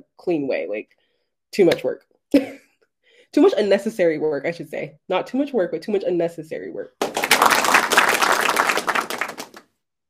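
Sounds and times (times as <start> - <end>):
speech: 0.2 - 2.6, 3.3 - 7.2
small crowd applauding: 7.0 - 9.6.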